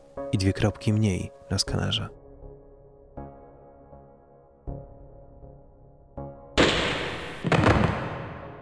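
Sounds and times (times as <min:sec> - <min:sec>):
speech: 0:00.2 - 0:02.2
gunshot: 0:06.6 - 0:08.6.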